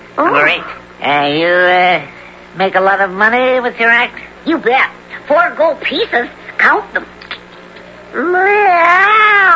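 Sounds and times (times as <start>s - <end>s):
speech: 0.2s - 7.2s, 8.1s - 9.5s
person imitating a cat meow: 8.1s - 9.5s.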